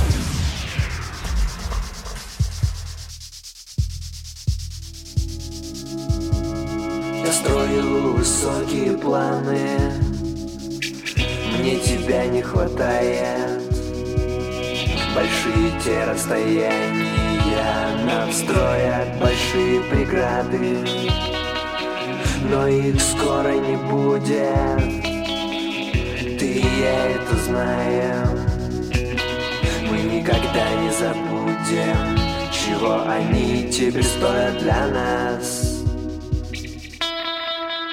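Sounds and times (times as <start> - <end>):
drum beat: 0.0 - 8.9, 9.6 - 23.4, 24.5 - 31.1, 32.0 - 37.1
band playing a song: 5.1 - 37.4
person singing: 6.8 - 36.1
speech: 7.7 - 10.0, 11.6 - 13.6, 15.1 - 21.4, 22.4 - 25.0, 26.5 - 28.5, 30.0 - 35.6.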